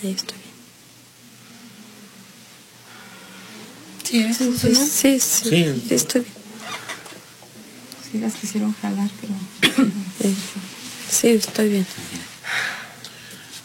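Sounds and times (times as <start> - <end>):
speech: 0.0 - 0.4, 4.1 - 6.4, 8.1 - 12.7
person in a harsh coughing fit: 9.6 - 10.0
throat clearing: 9.6 - 10.0.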